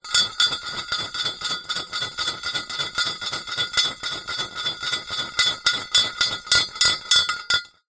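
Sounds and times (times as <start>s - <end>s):
thin wooden pole spinning in circular movement inside metal tube: 0.0s - 7.7s.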